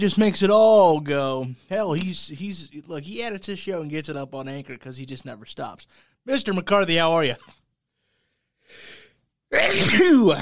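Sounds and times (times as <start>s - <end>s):
speech: 0.0s - 7.6s, 9.5s - 10.4s
brief quiet sharp inhale: 8.0s - 9.2s
man's loud explosive sneeze: 9.5s - 10.4s.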